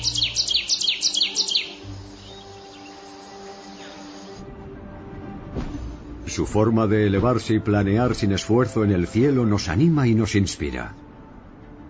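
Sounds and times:
birds singing in high bright chirping trills: 0:00.0 - 0:04.5
speech: 0:06.4 - 0:11.0.

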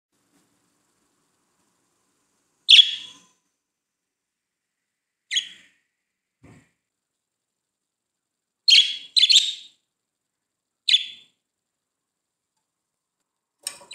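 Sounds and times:
budgerigar contact calls: 0:02.7 - 0:03.2, 0:05.3 - 0:05.7, 0:08.7 - 0:09.8, 0:10.9 - 0:11.3.

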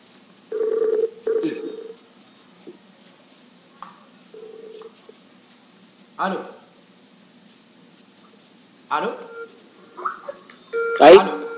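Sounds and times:
buzzy telephone line tones while redialing a dropped call: 0:00.5 - 0:02.0, 0:04.3 - 0:04.9, 0:09.1 - 0:11.5
speech: 0:06.2 - 0:06.6, 0:11.0 - 0:11.3.

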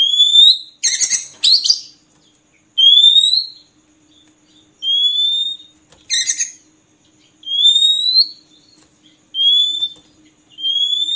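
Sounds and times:
Oriental magpie-robin giving clear rising whistles: 0:00.0 - 0:01.9, 0:04.8 - 0:06.6, 0:07.4 - 0:11.1.

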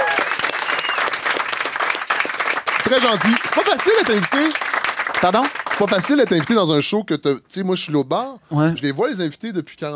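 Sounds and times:
television talk show studio audience applause: 0:00.0 - 0:06.5
short high whistle: 0:00.6 - 0:01.1
speech: 0:02.9 - 0:09.9.

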